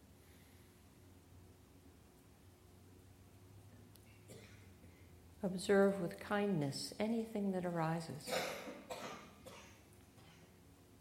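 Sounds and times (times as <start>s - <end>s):
speech: 5.4s - 8.6s
person coughing breathily: 8.3s - 10.5s.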